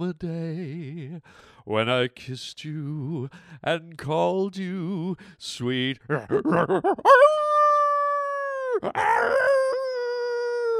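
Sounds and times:
speech: 0:00.0 - 0:07.7, 0:08.7 - 0:09.6
wolf howling: 0:07.0 - 0:10.7.

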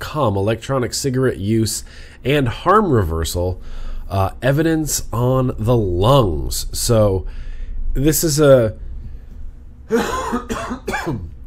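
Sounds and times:
speech: 0:00.1 - 0:07.4, 0:08.0 - 0:08.8, 0:09.9 - 0:11.3
harsh coughs with rough throat clearing: 0:09.9 - 0:11.4.

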